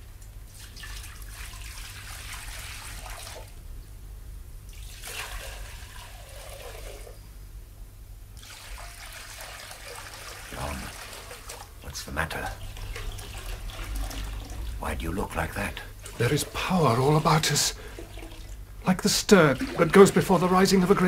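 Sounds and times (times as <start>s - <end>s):
water pouring into large pots: 0.5s - 3.6s, 4.7s - 7.2s, 8.4s - 11.8s, 12.4s - 21.0s
steady low hum: 3.5s - 8.4s, 10.4s - 21.0s
speech: 12.1s - 12.6s, 14.9s - 17.8s, 18.9s - 21.0s.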